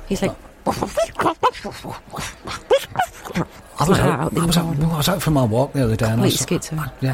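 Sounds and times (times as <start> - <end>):
speech: 0.1 - 7.1
person imitating a dog's varied barks and yaps: 0.6 - 4.2.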